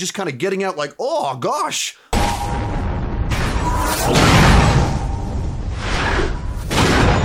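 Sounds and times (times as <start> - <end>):
speech: 0.0 - 2.7
big explosion with surging blasts: 2.1 - 7.2
whooshing swells of debris-like noise: 2.2 - 7.2.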